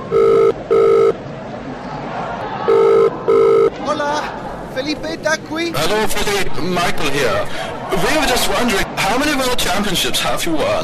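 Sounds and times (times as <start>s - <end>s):
mobile phone ringing: 0.0s - 1.2s, 2.7s - 3.7s
low murmur of noise: 0.0s - 10.8s
speech: 5.0s - 10.8s.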